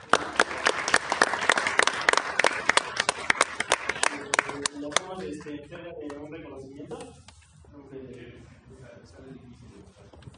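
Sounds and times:
audience applause at a talk: 0:00.0 - 0:05.1.

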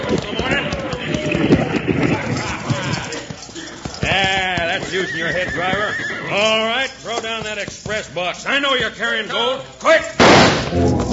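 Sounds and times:
horse hooves clip-clopping as a team hauls a stagecoach: 0:00.0 - 0:10.1
speech: 0:04.9 - 0:11.0
dense rumbling wash: 0:10.6 - 0:11.1.

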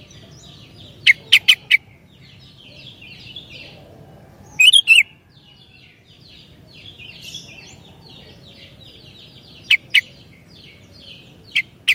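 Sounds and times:
soft bird chattering in the background: 0:00.0 - 0:03.9, 0:06.8 - 0:11.9
Sooty-headed bulbul chirping: 0:00.0 - 0:11.9.

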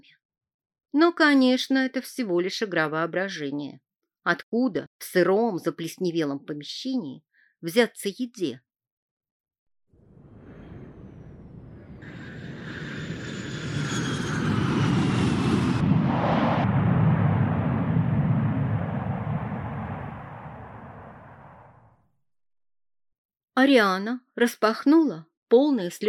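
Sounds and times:
speech: 0:00.9 - 0:08.7, 0:23.6 - 0:26.0
thin high whining tones: 0:10.0 - 0:19.2
airplane engine drone aboard a passenger plane in flight: 0:10.0 - 0:21.9.

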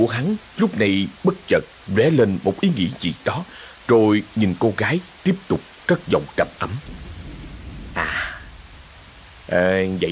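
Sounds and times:
speech: 0:00.0 - 0:07.0, 0:09.5 - 0:10.1
heavy rain falling as a steady hiss: 0:00.0 - 0:10.1
sharp thunder crack: 0:06.6 - 0:10.1.

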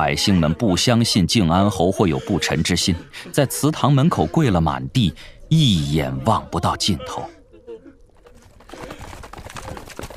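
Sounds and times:
speech: 0:00.0 - 0:07.4
horses' hooves clip-clopping as riders approach at the end of a street: 0:08.1 - 0:10.1.

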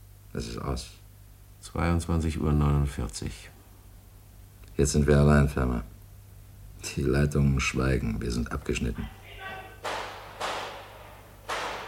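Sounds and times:
low steady hum: 0:00.0 - 0:11.8
speech: 0:00.4 - 0:01.0, 0:01.6 - 0:03.6, 0:04.8 - 0:05.9, 0:06.8 - 0:09.2
gunshots: 0:09.8 - 0:11.8.

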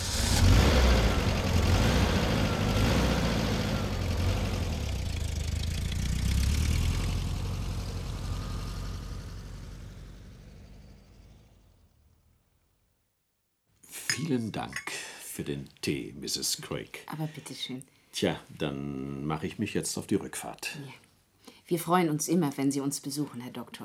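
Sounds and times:
car engine idling while parking in a corner spot: 0:00.0 - 0:12.3
speech: 0:14.2 - 0:21.0, 0:21.7 - 0:23.8.

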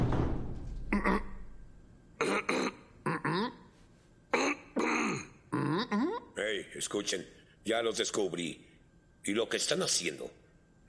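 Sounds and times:
person clearing throat: 0:00.9 - 0:01.4, 0:02.2 - 0:03.6, 0:04.3 - 0:06.2
person coughing: 0:02.2 - 0:03.6, 0:04.3 - 0:05.8
speech: 0:06.5 - 0:10.8.

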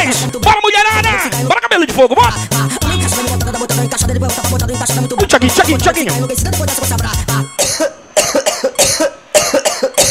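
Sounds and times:
music in a live DJ set: 0:00.0 - 0:07.9
speech: 0:00.1 - 0:08.0
harsh coughs in a live DJ set: 0:07.6 - 0:10.1.

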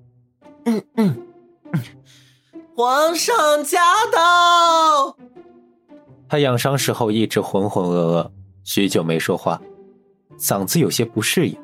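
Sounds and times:
speech: 0:00.7 - 0:01.3, 0:02.8 - 0:05.3, 0:06.3 - 0:09.7, 0:10.4 - 0:11.6
man clearing his throat: 0:00.7 - 0:02.0.

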